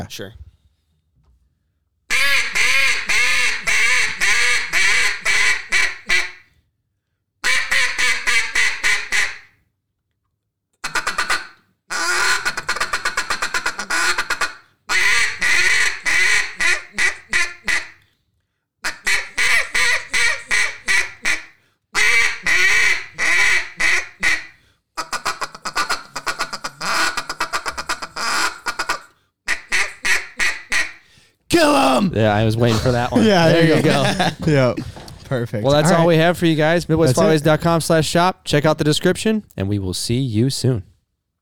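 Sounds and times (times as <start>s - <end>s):
speech: 0.0s - 0.4s, 32.2s - 40.9s
handheld duck call blown in rapid quacking runs: 2.1s - 6.5s, 7.4s - 9.6s, 10.8s - 18.0s, 18.8s - 31.9s, 33.2s - 34.4s
laughter: 31.5s - 37.8s.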